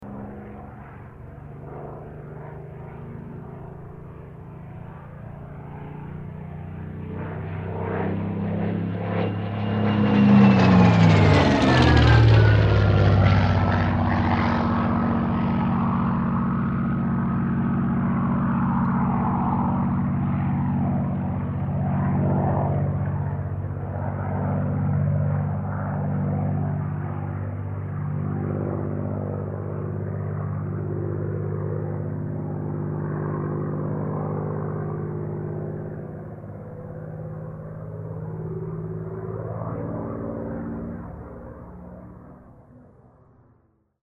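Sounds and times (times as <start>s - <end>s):
Supermarine Spitfire Mk XVI aircraft passing: 0.0s - 44.0s.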